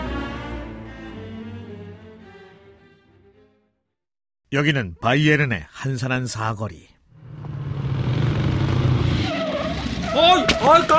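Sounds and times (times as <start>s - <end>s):
speech: 4.5s - 6.9s, 10.2s - 10.9s
motorcycle engine roaring: 7.1s - 10.8s
motorcycle tires screeching as it skids to a sudden stop: 7.1s - 10.9s.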